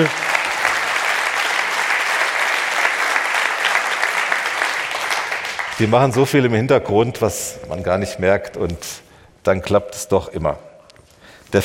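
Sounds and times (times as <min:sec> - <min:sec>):
speech: 0:00.0 - 0:00.2, 0:05.8 - 0:10.7
audience applause from a sizable crowd: 0:00.0 - 0:06.2.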